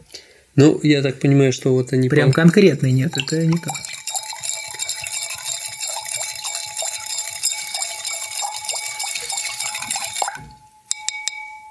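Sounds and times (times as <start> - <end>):
speech: 0.1 - 3.9
liquid mixture being stirred in a container: 1.9 - 11.0
glass clinking: 2.2 - 11.6.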